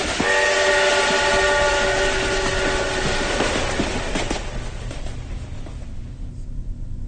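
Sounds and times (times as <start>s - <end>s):
loud multi-tone train horn: 0.0s - 4.6s
train rolling past on rails: 0.0s - 7.0s.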